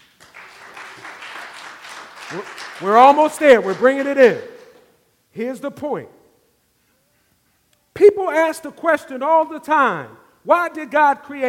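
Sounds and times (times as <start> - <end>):
church congregation clapping during a sermon: 0.0 - 5.0
speech: 2.3 - 4.5, 5.3 - 6.2, 8.0 - 11.4.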